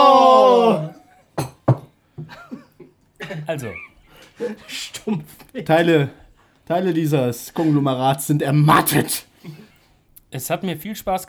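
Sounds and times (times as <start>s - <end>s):
glasses clinking in a toast: 1.4s - 2.3s
speech: 3.4s - 9.7s, 10.3s - 11.2s
sustained voice: 8.5s - 9.2s.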